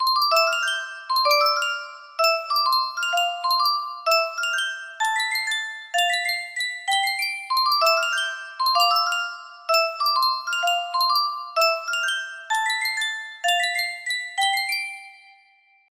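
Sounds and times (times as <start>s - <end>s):
Sankyo custom tune music box melody: 0.0s - 15.7s.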